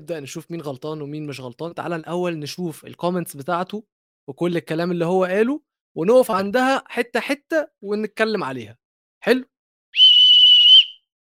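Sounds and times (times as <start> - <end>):
speech: 0.0 - 10.0
shrill referee's whistle blast with a slight trill: 10.0 - 11.0.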